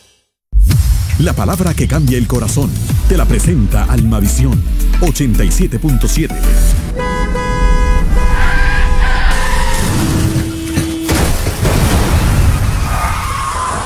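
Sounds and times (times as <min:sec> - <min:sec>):
speech: 0:01.2 - 0:07.0
car horn blaring: 0:06.3 - 0:11.7
loud car crash: 0:06.8 - 0:13.8
tires screeching in a long skid: 0:06.8 - 0:13.8
rumbling debris from car crash: 0:07.8 - 0:13.8.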